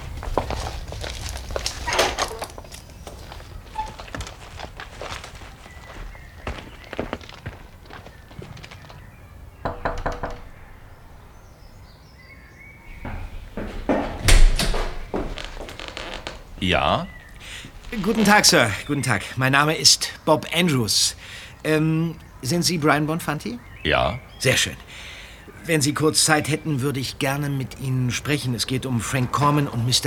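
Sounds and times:
footsteps crunching at a walking pace: 0.0 - 9.7, 12.9 - 19.1
bird chirps: 0.0 - 30.0
wooden door rattling: 1.2 - 4.5, 9.6 - 11.8, 12.9 - 18.8
wooden garden gate creaking and knocking: 1.6 - 3.0, 9.6 - 11.4, 12.9 - 18.6
man knocking on the wooden door of a small house: 9.6 - 10.6, 12.9 - 15.3
speech: 16.7 - 17.1, 18.0 - 30.0.

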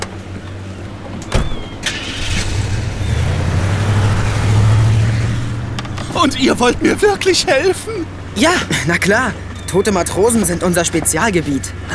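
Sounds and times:
car engine starting and humming as the car pulls away: 0.0 - 10.6
car door shutting: 1.1 - 6.2
speech: 6.3 - 11.9.

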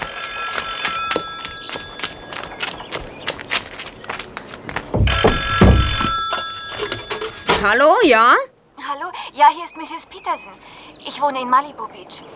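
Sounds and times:
telephone bell ringing with a rapid metallic trill: 0.0 - 2.6, 5.1 - 7.6
heavy thumping footsteps: 0.0 - 7.7
speech: 7.6 - 12.3.

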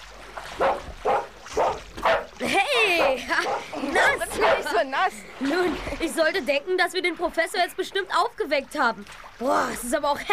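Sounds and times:
dog barking: 0.6 - 3.7, 4.3 - 4.8
laughter: 2.4 - 6.1
speech: 4.8 - 10.3.

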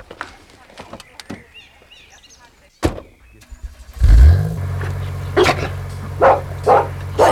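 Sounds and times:
sharp clunks: 2.8 - 7.2
car engine starting: 3.3 - 7.2
dog barking in short loud yelps: 5.3 - 7.2.

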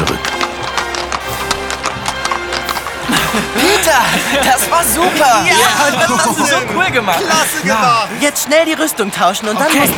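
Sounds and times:
horse trotting with clip-clopping hooves at a tournament: 0.0 - 6.2
laughter: 2.9 - 9.9
speech: 3.9 - 9.9.

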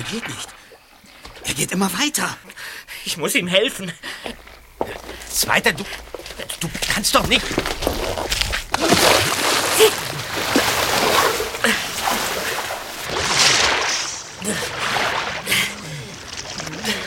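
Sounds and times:
speech: 0.0 - 0.6, 1.4 - 9.1
man wading and splashing through icy-cold water: 4.0 - 17.0.

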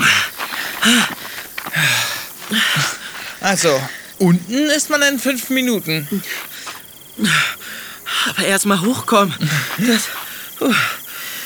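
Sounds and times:
person panting heavily after a long uphill climb: 0.0 - 4.2, 6.1 - 8.4, 9.4 - 11.4
speech: 0.8 - 1.2, 3.5 - 6.5, 7.2 - 7.5, 8.4 - 11.0.

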